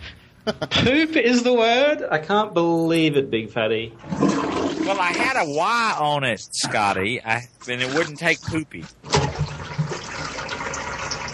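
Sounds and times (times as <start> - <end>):
speech: 0.4 - 4.3, 4.9 - 9.1
toilet flushing: 4.0 - 5.6, 7.6 - 11.3.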